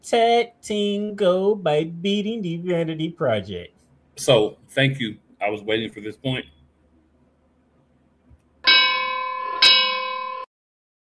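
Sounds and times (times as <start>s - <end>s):
speech: 0.0s - 6.6s
bright metallic opening bell clanging: 8.7s - 10.5s.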